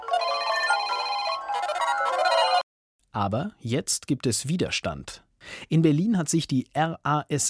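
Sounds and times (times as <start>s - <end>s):
smartphone ringtone for incoming message: 0.0s - 2.6s
speech: 3.2s - 7.4s.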